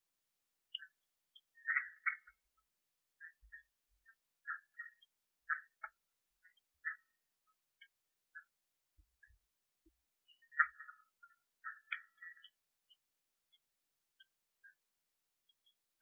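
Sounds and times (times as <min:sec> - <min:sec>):
Red-eyed tree frog Agalychnis callidryas clucks: 0:01.5 - 0:02.4, 0:04.4 - 0:07.2, 0:10.3 - 0:12.6.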